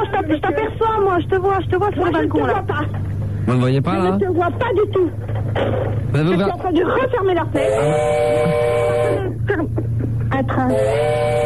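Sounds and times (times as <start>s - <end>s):
speech: 0.3s - 9.8s, 10.4s - 11.4s
train whistle at the railway station in Besançon: 7.6s - 9.3s, 10.7s - 11.4s.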